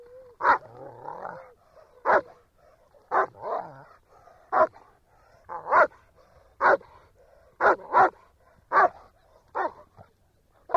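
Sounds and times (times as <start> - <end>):
German Shepherd dog barking: 0.4 - 2.4, 3.0 - 4.9, 5.5 - 10.1.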